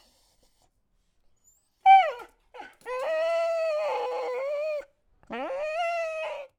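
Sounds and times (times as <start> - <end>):
dog crying: 1.9 - 6.5.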